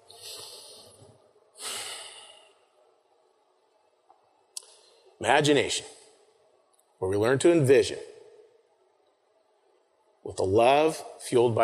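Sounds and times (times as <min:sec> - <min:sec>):
group breathing deeply together: 0:00.0 - 0:02.7
speech: 0:05.2 - 0:06.0, 0:07.0 - 0:08.1, 0:10.3 - 0:11.6.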